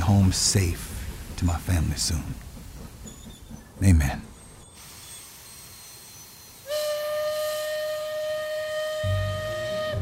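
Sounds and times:
train rumbling as it comes in: 0:00.0 - 0:09.9
speech: 0:00.1 - 0:02.5, 0:03.8 - 0:04.3
train whistle: 0:05.7 - 0:09.9.

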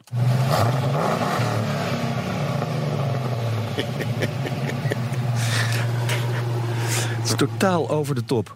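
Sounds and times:
V8 engine of a modified Land Rover Defender revving: 0:00.0 - 0:08.2
laughter: 0:03.6 - 0:07.3
speech: 0:03.8 - 0:04.4, 0:07.3 - 0:08.5.

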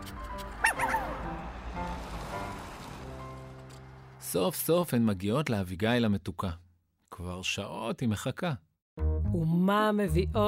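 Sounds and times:
brown puppy yipping and whimpering: 0:00.4 - 0:01.2
speech: 0:04.3 - 0:06.6, 0:07.2 - 0:08.7, 0:09.3 - 0:10.4.

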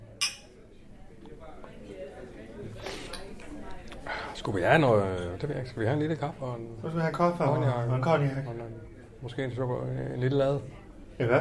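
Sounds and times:
glasses clinking together in a toast: 0:00.2 - 0:00.6
speech: 0:04.4 - 0:11.4.

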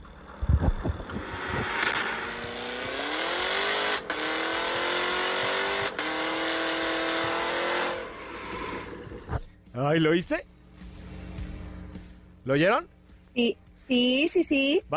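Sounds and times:
2022 American luxury sports car engine starting and revving: 0:00.0 - 0:09.5
speech: 0:09.8 - 0:10.5, 0:12.5 - 0:14.9.

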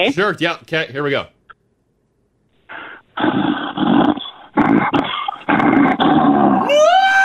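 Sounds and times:
speech: 0:00.0 - 0:01.4, 0:06.7 - 0:07.1
person imitating an animal growl: 0:03.2 - 0:06.8.

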